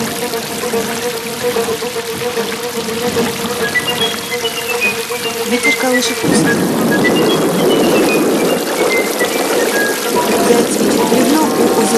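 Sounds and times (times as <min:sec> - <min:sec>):
heavy rain pouring down through a forest after dark: 0:00.0 - 0:11.9
speech: 0:00.2 - 0:08.0, 0:10.5 - 0:11.9.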